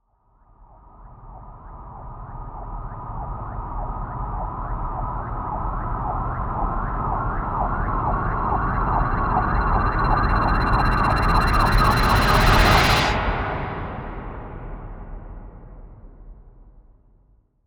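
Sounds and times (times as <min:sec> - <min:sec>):
riser sound effect: 0:04.5 - 0:14.1.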